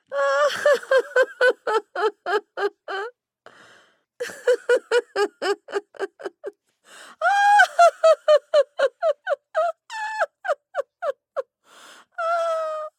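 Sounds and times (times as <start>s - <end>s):
woman hearty cackling laughter: 0.2s - 3.1s, 4.2s - 6.5s, 7.2s - 11.4s.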